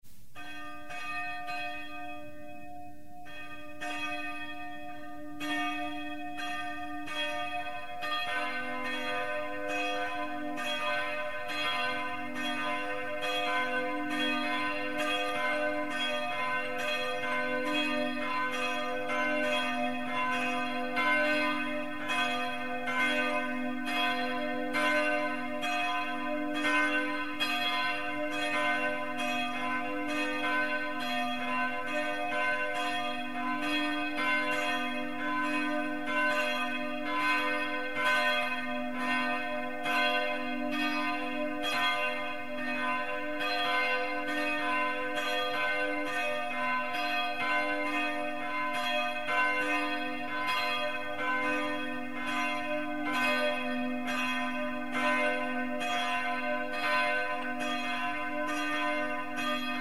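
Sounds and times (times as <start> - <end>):
bells ringing in Marienrode: 0.4 - 59.8.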